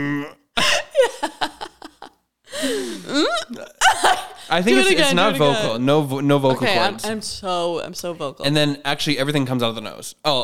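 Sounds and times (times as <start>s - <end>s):
voice imitating a baby straining to burp: 0.0s - 0.6s, 3.0s - 3.9s
laughter: 0.6s - 5.8s
speech: 4.5s - 10.4s.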